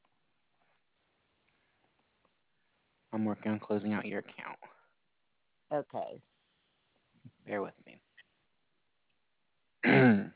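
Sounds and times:
speech: 0:03.2 - 0:04.8, 0:05.7 - 0:06.3, 0:07.4 - 0:08.0
throat clearing from a tickle in the throat: 0:09.8 - 0:10.3.

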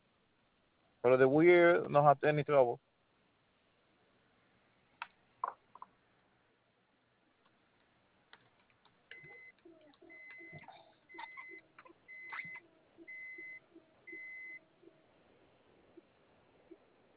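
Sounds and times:
speech: 0:01.0 - 0:02.9
short electronic beeps: 0:09.2 - 0:09.5, 0:10.1 - 0:14.6.

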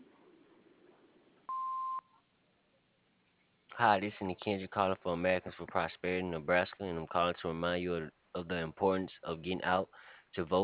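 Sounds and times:
answering machine beep: 0:01.5 - 0:02.0
speech: 0:03.8 - 0:10.6.

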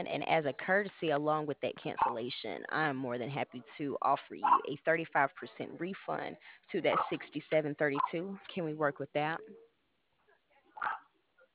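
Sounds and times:
speech: 0:00.0 - 0:09.6
pet dog barking: 0:10.8 - 0:11.0.

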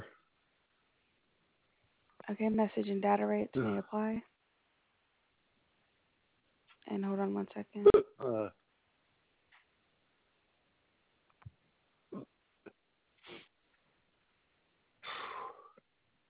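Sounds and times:
speech: 0:02.3 - 0:04.3, 0:06.9 - 0:08.6
person hiccupping: 0:03.6 - 0:03.8, 0:07.8 - 0:08.5.

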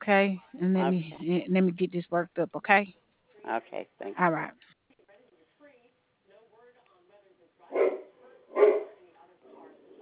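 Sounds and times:
speech: 0:00.0 - 0:04.6
dog barking: 0:07.7 - 0:09.0.

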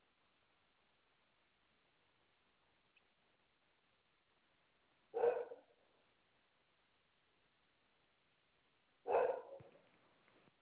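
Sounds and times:
border collie and Labrador mix dog barking: 0:05.1 - 0:05.8, 0:09.0 - 0:09.8.

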